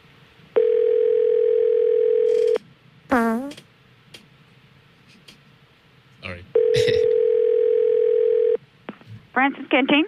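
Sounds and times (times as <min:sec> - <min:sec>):
telephone ringback tone on an outgoing call: 0:00.6 - 0:02.6, 0:06.6 - 0:08.6
voice answering over the phone line: 0:06.7 - 0:07.1
speech: 0:09.4 - 0:10.0.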